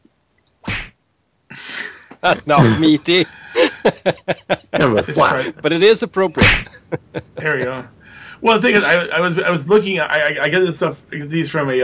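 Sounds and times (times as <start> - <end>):
laughter: 2.2 - 5.8, 6.6 - 7.9
speech: 2.2 - 11.8
punch sound effect: 6.4 - 6.7.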